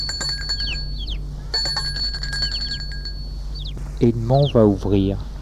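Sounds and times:
bell rung at a garden gate: 0:00.0 - 0:03.7
speech: 0:04.0 - 0:05.3.

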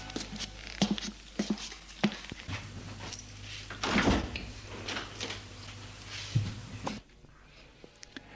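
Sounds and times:
steady low hum: 0:00.0 - 0:08.3
bedroom door opening: 0:02.5 - 0:05.5.

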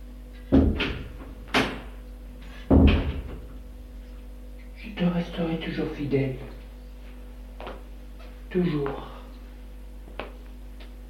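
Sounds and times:
door shutting with a firm thud: 0:00.5 - 0:03.5
speech: 0:05.0 - 0:06.6, 0:08.5 - 0:09.1.

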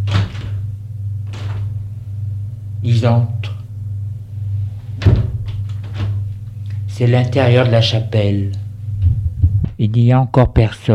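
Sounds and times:
steady low hum: 0:00.0 - 0:10.1
speech: 0:02.8 - 0:03.4, 0:07.0 - 0:08.6, 0:09.8 - 0:10.9
door opening with scraping: 0:05.0 - 0:06.3.

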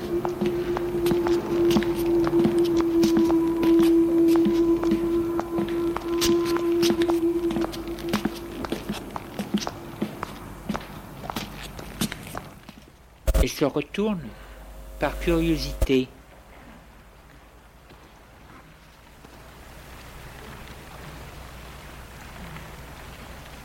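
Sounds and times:
sustained tone: 0:00.0 - 0:11.2, 0:13.3 - 0:16.2
footsteps walking behind someone: 0:00.0 - 0:13.5
speech: 0:13.6 - 0:14.4, 0:15.0 - 0:16.2.

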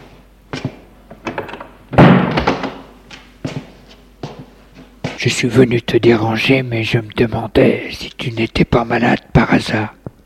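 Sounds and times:
bedroom door thudding shut: 0:02.0 - 0:02.8
speech: 0:05.2 - 0:10.0.

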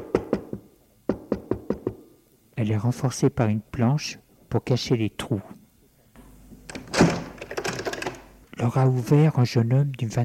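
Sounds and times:
knocking on a wooden door: 0:00.0 - 0:02.0
speech: 0:02.6 - 0:05.6, 0:08.6 - 0:10.2.

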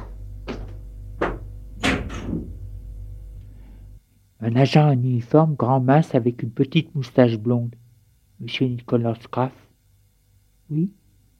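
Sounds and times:
dull knocks and clunks of handling: 0:00.0 - 0:02.6
door being opened: 0:00.0 - 0:02.7
low steady hum: 0:00.0 - 0:11.3
speech: 0:04.4 - 0:07.8, 0:08.4 - 0:09.7, 0:10.7 - 0:11.0.

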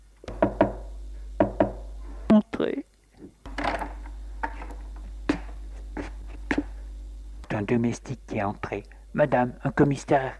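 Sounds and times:
low steady hum: 0:00.0 - 0:10.3
sharp wooden knocks on a door: 0:00.3 - 0:01.9
speech: 0:02.6 - 0:02.9, 0:07.6 - 0:10.3.

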